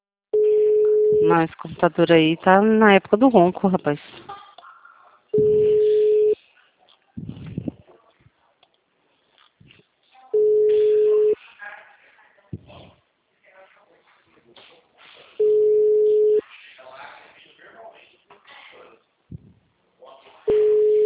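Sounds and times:
telephone ringback tones on a call to a toll-free number: 0.4s - 1.4s, 5.4s - 6.4s, 10.4s - 11.4s, 15.4s - 16.4s, 20.5s - 21.0s
speech: 1.2s - 4.4s
quiet talk: 4.1s - 15.4s, 16.4s - 20.8s.

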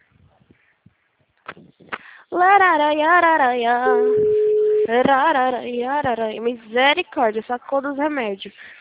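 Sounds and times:
speech: 2.4s - 8.7s
telephone ringing tone on an outgoing call: 3.8s - 4.9s.

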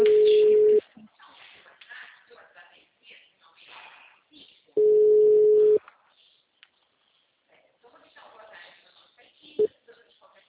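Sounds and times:
steady mid-pitched telephone tone as a call is placed: 0.0s - 0.8s, 4.8s - 5.8s
people talking: 0.0s - 4.9s, 7.5s - 10.4s.

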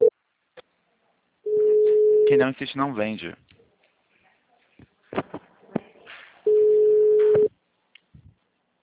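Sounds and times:
loud steady telephone busy tone after a dropped call: 1.5s - 2.4s, 6.5s - 7.5s
speech: 2.3s - 3.5s.

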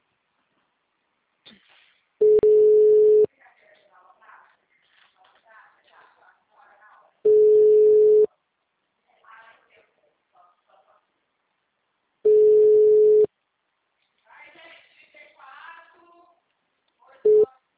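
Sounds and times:
phone line ringing tones while calling a mobile phone: 2.2s - 3.3s, 7.3s - 8.3s, 12.3s - 13.3s.

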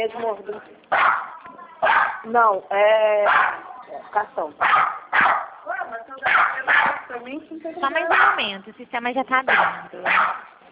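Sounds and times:
speech: 0.0s - 1.3s, 2.2s - 5.3s, 7.2s - 10.4s
agitated dog barking: 0.9s - 2.3s, 3.2s - 3.8s, 4.6s - 7.1s, 8.1s - 8.5s, 9.5s - 10.6s.

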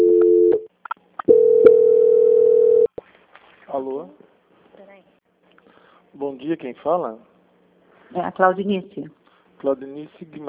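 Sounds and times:
telephone line tones during a call transfer: 0.0s - 0.7s, 1.3s - 2.9s
speech: 6.2s - 7.3s, 8.1s - 10.4s.

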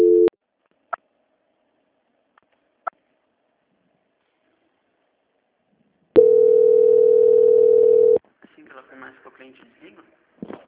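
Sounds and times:
telephone call transfer tone: 0.0s - 0.3s, 6.2s - 8.2s.

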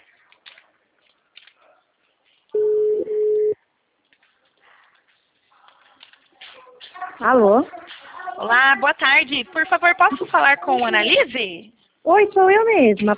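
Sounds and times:
telephone ringback tone while a call connects: 2.6s - 3.6s
speech: 7.2s - 7.8s, 8.4s - 13.1s.

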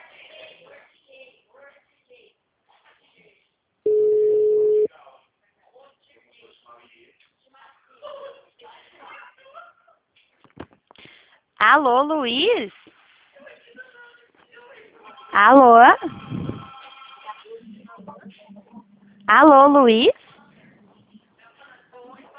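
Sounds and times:
telephone call ringback tone: 3.9s - 4.9s
speech: 11.8s - 12.8s, 15.4s - 16.2s, 19.3s - 20.1s.

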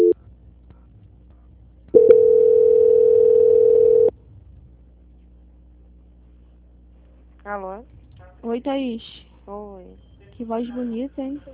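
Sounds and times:
telephone call-transfer tone: 2.0s - 4.1s
speech: 8.5s - 11.5s.

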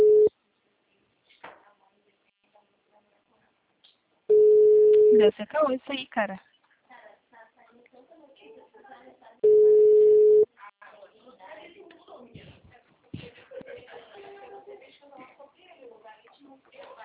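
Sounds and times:
telephone line tone as a call drops on a weak connection: 0.0s - 0.3s, 4.3s - 5.2s, 9.4s - 10.5s
speech: 5.2s - 6.5s.

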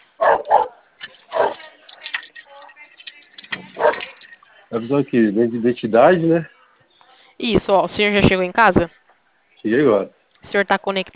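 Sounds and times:
dog barking in sharp bursts: 0.2s - 1.6s, 3.8s - 4.2s
quiet murmuring: 1.2s - 7.5s
speech: 4.7s - 6.6s, 7.5s - 9.0s, 9.6s - 11.1s.

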